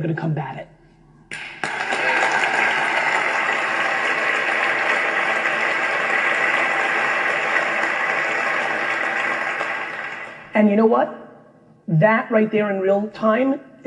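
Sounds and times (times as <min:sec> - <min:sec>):
speech: 0:00.0 - 0:00.7, 0:10.6 - 0:11.2, 0:11.9 - 0:13.8
audience clapping: 0:01.3 - 0:10.6.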